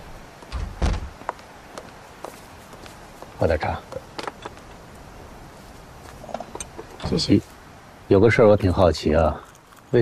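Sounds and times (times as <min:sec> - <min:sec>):
door shutting with a dull heavy thud: 0:00.5 - 0:01.1
speech: 0:03.4 - 0:04.1, 0:07.1 - 0:07.5, 0:08.1 - 0:10.0.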